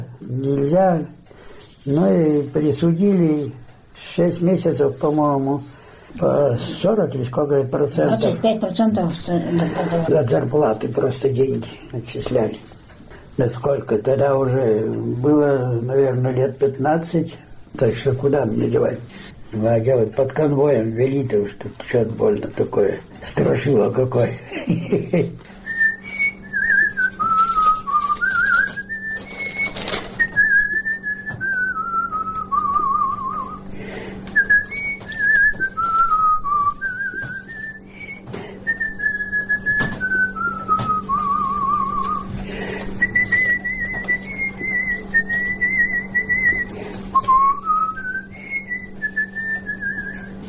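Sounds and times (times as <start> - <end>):
speech: 0.3 - 1.2, 1.8 - 12.8, 13.4 - 25.6
laughter: 9.2 - 10.5, 24.4 - 25.5
steady low hum: 24.5 - 50.4
person whistling a wandering melody: 25.6 - 33.6, 34.4 - 42.3, 43.0 - 50.4.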